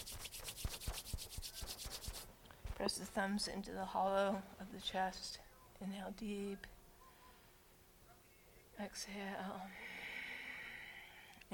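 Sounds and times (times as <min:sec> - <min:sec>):
hands rubbing briskly together at a yoga class: 0:00.0 - 0:02.3
speech: 0:02.8 - 0:06.8, 0:08.8 - 0:09.8.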